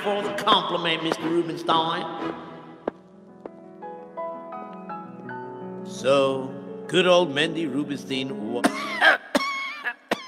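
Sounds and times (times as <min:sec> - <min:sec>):
speech: 0:00.0 - 0:02.4, 0:06.0 - 0:09.2
sharp coughs: 0:08.6 - 0:10.2.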